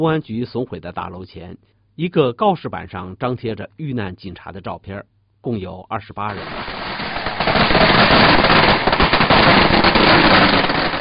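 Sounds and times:
speech: 0.0s - 6.9s
string of firecrackers crackling and popping: 6.3s - 10.9s.

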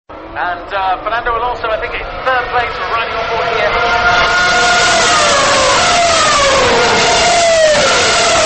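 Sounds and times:
roar of racing car engines at the Korean Grand Prix circuit in Yeongam: 0.1s - 8.4s
speech: 0.4s - 4.7s
Formula One racing car engine screaming past: 1.8s - 8.4s.

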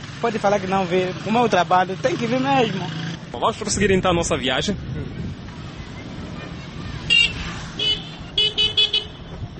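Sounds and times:
traffic and engine rumble at a roundabout: 0.0s - 9.5s
speech: 0.2s - 5.3s
motorcycle horn beeping at a roundabout: 7.1s - 9.3s.

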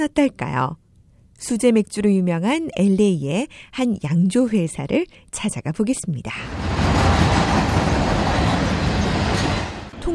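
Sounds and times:
speech: 0.0s - 0.8s, 1.4s - 6.6s
train passing on rails in an industrial district of Los Angeles beside a brewery: 6.4s - 10.1s.

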